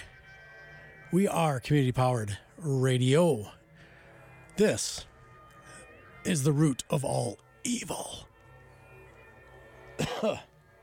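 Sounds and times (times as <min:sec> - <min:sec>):
speech: 0:01.1 - 0:03.6, 0:04.6 - 0:05.1, 0:06.2 - 0:08.3, 0:10.2 - 0:10.5
rough cough with raspy throat-clearing: 0:10.0 - 0:10.5.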